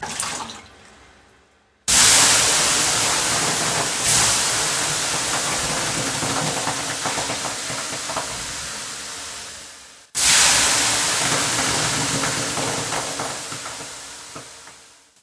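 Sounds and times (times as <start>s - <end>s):
sauna stove: 1.9s - 15.2s.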